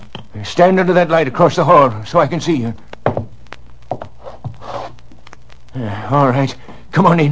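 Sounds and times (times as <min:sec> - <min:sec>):
speech: 0:00.6 - 0:02.9, 0:06.1 - 0:07.2
letter scraping and rustling pushed under the door of a flat: 0:04.2 - 0:05.0.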